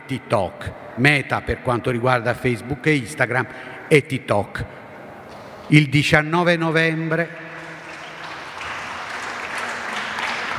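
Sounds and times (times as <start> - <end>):
speech: 0.1 - 4.8, 5.7 - 7.4
audience applause: 7.4 - 10.5.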